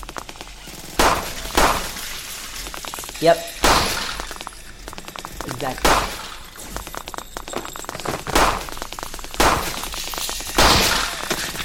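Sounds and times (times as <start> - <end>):
video game gunfire while shooting at a cord: 0.0 - 11.6
speech: 3.2 - 3.6, 5.6 - 6.2.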